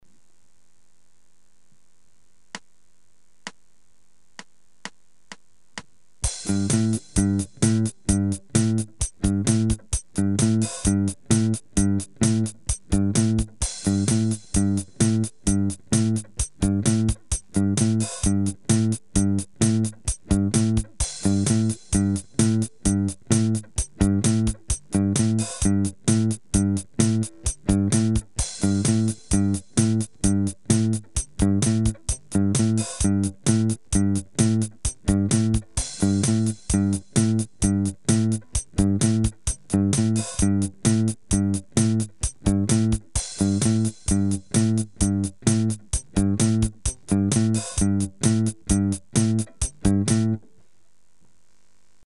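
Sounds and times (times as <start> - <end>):
bassy bell riffs: 6.2 - 50.4.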